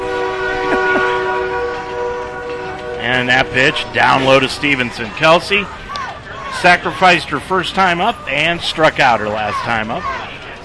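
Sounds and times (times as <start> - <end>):
train horn blowing a long chord-like blast: 0.0 - 4.9
low rumbling background: 0.0 - 6.0
speech: 3.1 - 5.8, 6.6 - 10.3.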